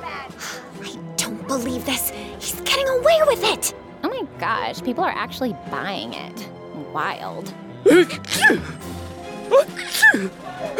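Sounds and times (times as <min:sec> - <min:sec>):
speech: 0:01.5 - 0:10.7
breathy sounds: 0:07.8 - 0:10.7
person sneezing: 0:07.9 - 0:08.8, 0:09.6 - 0:10.3.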